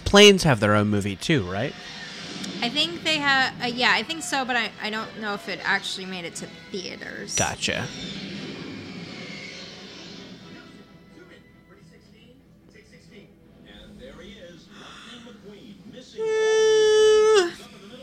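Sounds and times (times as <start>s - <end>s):
speech: 0.1s - 2.0s, 2.6s - 8.2s
person yawning: 16.2s - 17.7s.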